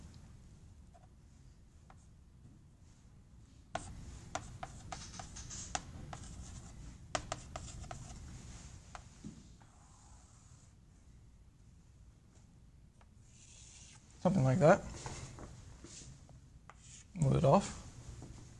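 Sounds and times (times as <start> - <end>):
marker scratching strokes across a board drawing a curve: 3.8 - 8.2, 13.3 - 14.0, 16.7 - 17.2
marker taps and rubs on a board: 3.8 - 8.2
speech: 14.2 - 15.1, 17.4 - 17.8.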